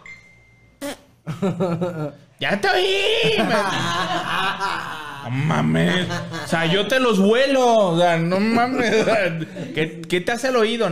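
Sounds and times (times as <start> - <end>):
person's voice imitating a fart: 0.8 - 1.1
laughter: 1.3 - 7.1, 8.4 - 10.0
speech: 1.3 - 10.9.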